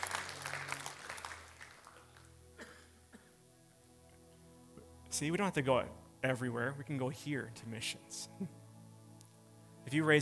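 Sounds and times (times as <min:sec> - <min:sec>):
church congregation clapping hands during a morning service: 0:00.0 - 0:03.0
speech: 0:05.1 - 0:08.6, 0:09.8 - 0:10.2.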